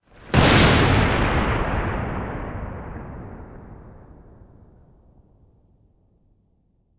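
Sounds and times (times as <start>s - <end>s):
lightning bolt crash in a storm: 0.3s - 4.7s.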